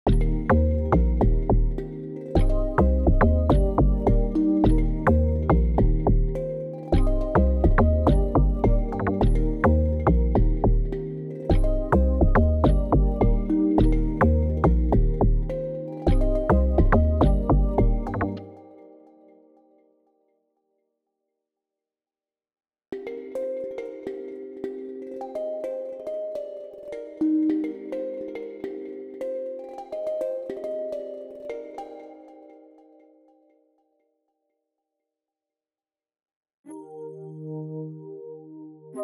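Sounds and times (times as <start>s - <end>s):
bamboo percussion: 0.0s - 18.8s, 22.9s - 33.4s.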